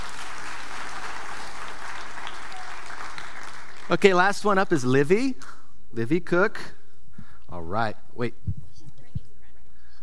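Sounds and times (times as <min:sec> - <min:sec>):
audience applause: 0:00.0 - 0:04.2
speech: 0:03.9 - 0:06.8, 0:07.5 - 0:08.6.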